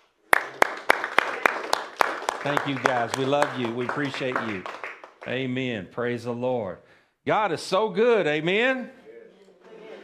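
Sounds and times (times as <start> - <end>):
church audience clapping hands for the praise and worship team: 0.0 - 5.8
speech: 2.4 - 9.0.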